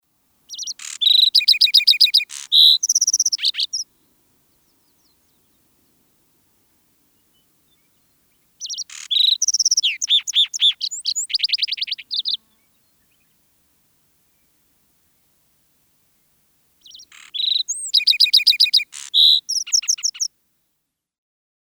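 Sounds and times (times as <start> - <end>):
lark singing: 0.5 - 6.0, 7.1 - 13.4, 16.8 - 20.3.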